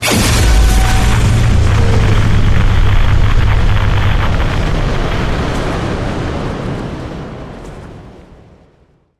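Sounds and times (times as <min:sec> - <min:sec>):
electronic pulse: 0:00.0 - 0:06.1.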